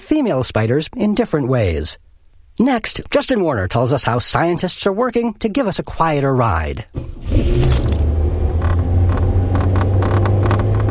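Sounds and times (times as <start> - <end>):
speech: 0.1 - 8.0
car engine drone in a car cabin: 6.9 - 10.8
loose car parts rattling and tapping while driving: 7.5 - 10.8.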